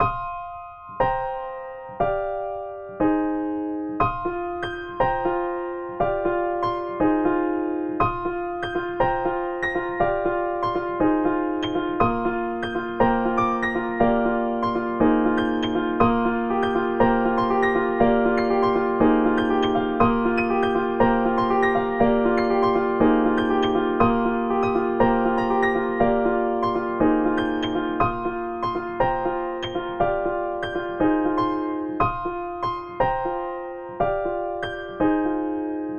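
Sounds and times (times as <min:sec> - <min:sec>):
snowy music: 0:00.0 - 0:35.9.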